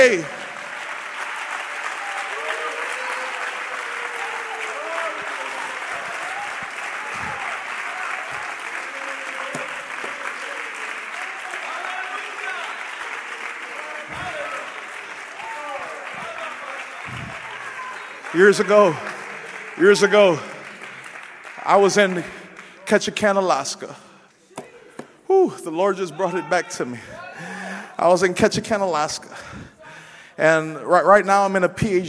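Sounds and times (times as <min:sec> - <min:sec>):
speech: 0:00.0 - 0:00.4, 0:18.4 - 0:19.1, 0:19.8 - 0:20.5, 0:21.7 - 0:24.1, 0:25.4 - 0:27.2, 0:28.0 - 0:29.6, 0:30.4 - 0:32.0
congregation clapping during a church service: 0:00.0 - 0:24.2.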